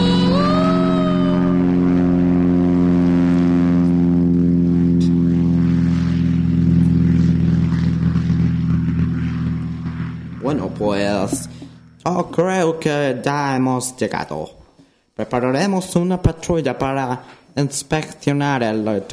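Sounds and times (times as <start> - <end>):
spacecraft engine roar on takeoff from Cape Canaveral: 0.0 - 12.8
thin whining tone: 0.0 - 12.8
speech: 10.8 - 14.6, 15.2 - 19.1.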